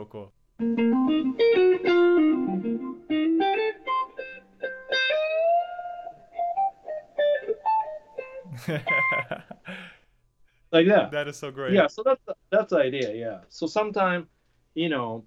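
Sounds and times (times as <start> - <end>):
speech: 0.0 - 2.9, 8.7 - 9.8, 10.7 - 15.2
picked electric guitar notes washed in reverb: 0.6 - 9.4
laughter: 8.5 - 9.9, 11.2 - 11.8.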